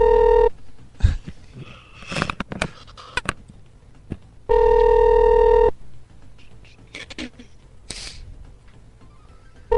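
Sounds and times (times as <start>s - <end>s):
telephone line ringing through a receiver: 0.0s - 0.5s, 4.5s - 5.7s.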